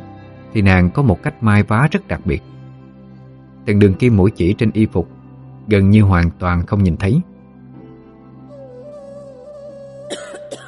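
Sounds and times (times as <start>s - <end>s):
speech: 0.5s - 2.6s, 3.6s - 7.3s
woman coughing: 10.1s - 10.6s.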